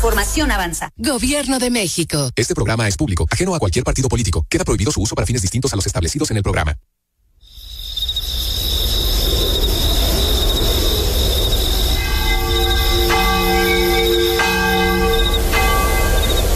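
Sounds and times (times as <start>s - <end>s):
speech: 0.0s - 7.0s
chorus of chirping crickets: 7.4s - 16.5s
church bell tolling: 12.0s - 16.5s.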